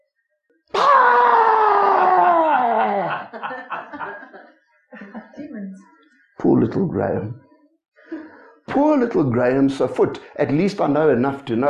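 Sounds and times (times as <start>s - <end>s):
man imitating a wild animal's growling roar: 0.8s - 3.3s
laughter: 2.0s - 5.4s
speech: 6.5s - 7.4s, 8.8s - 11.6s.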